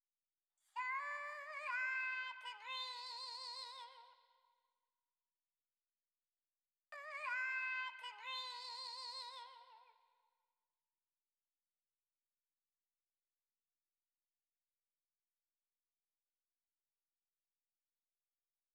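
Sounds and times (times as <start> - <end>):
vocal in E minor: 0.8 - 4.4, 7.0 - 10.1.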